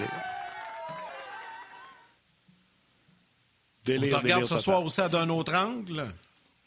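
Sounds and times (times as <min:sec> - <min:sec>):
people shouting in a crowd: 0:00.0 - 0:02.1
large crowd roaring and cheering loudly: 0:00.0 - 0:02.2
speech: 0:03.9 - 0:06.3.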